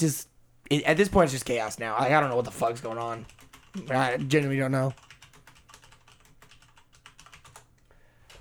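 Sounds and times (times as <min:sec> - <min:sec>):
speech: 0:00.0 - 0:05.1
typing on a computer keyboard: 0:02.2 - 0:07.9.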